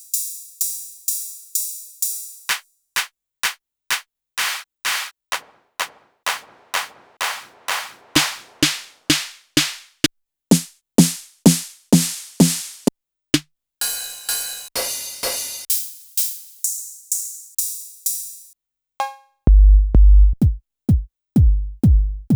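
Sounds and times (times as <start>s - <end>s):
drum samples: 0.0s - 22.3s.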